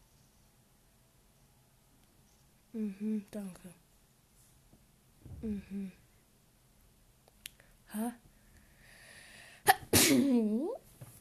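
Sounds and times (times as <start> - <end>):
speech: 2.8 - 3.8, 5.4 - 6.0, 7.9 - 8.3, 10.1 - 10.8
person sneezing: 9.6 - 10.3.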